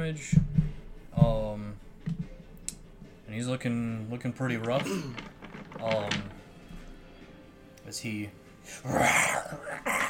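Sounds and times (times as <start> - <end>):
speech: 0.0 - 0.5, 3.3 - 6.4, 7.9 - 10.0
voice imitating a deep rough animal growl: 8.8 - 10.0.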